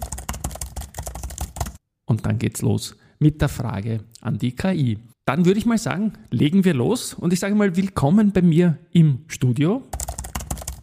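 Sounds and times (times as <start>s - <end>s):
typing on a computer keyboard in a studio: 0.0s - 1.8s, 9.9s - 10.8s
speech: 2.1s - 10.0s.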